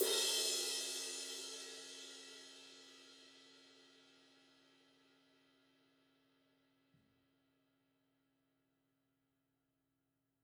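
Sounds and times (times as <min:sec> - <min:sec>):
ride cymbal crash: 0:00.0 - 0:02.6.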